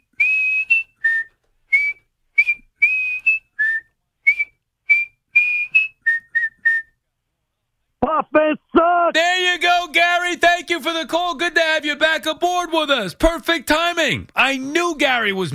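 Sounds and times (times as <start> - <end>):
person whistling a quick lively tune: 0.1 - 7.0
speech: 8.0 - 15.5.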